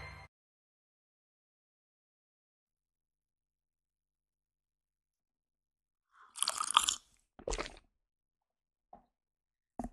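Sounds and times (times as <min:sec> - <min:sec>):
wet slurps of someone sipping coffee: 0:06.2 - 0:07.8.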